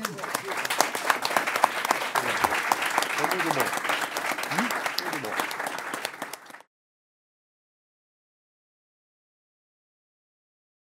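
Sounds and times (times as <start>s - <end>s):
audience applause: 0.0s - 6.7s.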